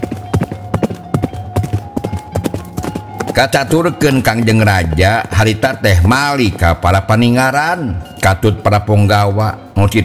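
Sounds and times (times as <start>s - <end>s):
horse hooves galloping: 0.0s - 10.0s
speech: 3.4s - 10.0s.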